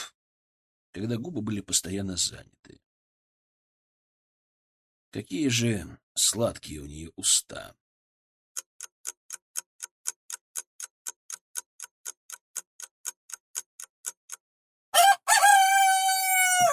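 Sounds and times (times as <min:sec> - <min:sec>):
speech: 0:01.0 - 0:02.9, 0:05.1 - 0:07.8
steady evenly spaced ticks: 0:08.6 - 0:14.4
rooster crowing outside a window in the Kremlin: 0:14.9 - 0:16.7.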